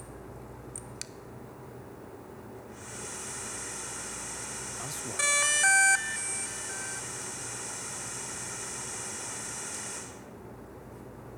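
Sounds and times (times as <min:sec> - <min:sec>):
Mavic drone operating: 0:02.8 - 0:10.3.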